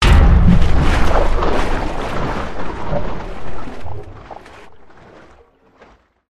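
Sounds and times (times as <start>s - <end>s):
crane impact on water tower: 0.0s - 5.0s.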